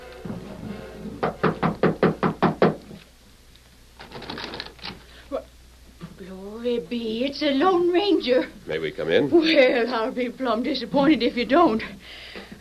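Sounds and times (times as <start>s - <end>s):
sharp knocking on a wooden door: 1.2s - 2.8s
speech: 6.9s - 12.2s.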